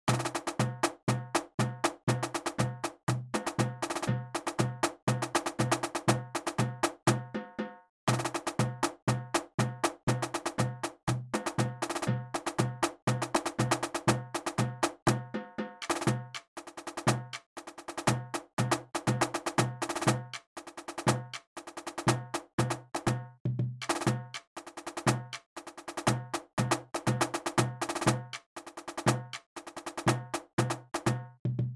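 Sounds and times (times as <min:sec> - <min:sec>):
marching drums: 0:00.1 - 0:31.7.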